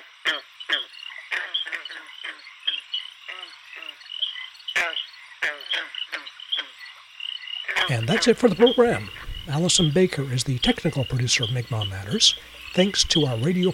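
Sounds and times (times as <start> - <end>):
American toads croaking in a chorus: 0.0 - 13.7
speech: 7.9 - 13.7.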